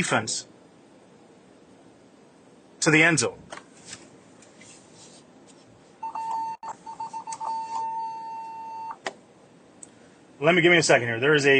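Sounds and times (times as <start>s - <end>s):
speech: 0.0s - 0.5s, 2.8s - 3.6s, 10.4s - 11.5s
car impact warning beeps in a parent pickup line: 6.0s - 9.0s.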